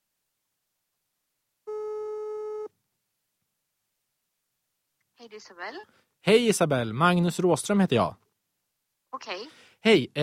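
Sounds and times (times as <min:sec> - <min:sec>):
electronic telephone ringback tone while calling: 0:01.7 - 0:02.7
speech: 0:05.2 - 0:08.2, 0:09.1 - 0:10.2.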